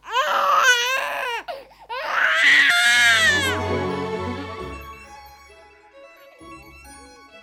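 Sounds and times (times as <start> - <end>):
newborn baby wailing loudly inside a palazzo: 0.0 - 3.6.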